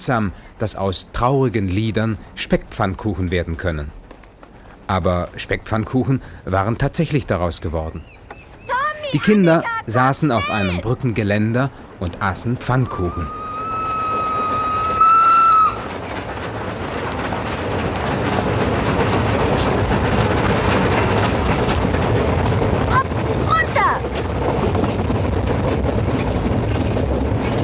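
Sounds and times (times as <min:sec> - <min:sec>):
speech: 0:00.0 - 0:04.0, 0:04.9 - 0:08.1, 0:09.1 - 0:13.4
moving train rumbling and clattering: 0:00.0 - 0:27.6
person shouting: 0:08.8 - 0:10.9
train whistle blast: 0:12.9 - 0:15.8.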